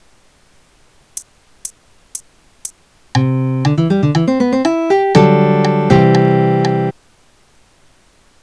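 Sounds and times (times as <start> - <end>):
soft C major seventh guitar chord: 3.2 - 6.9.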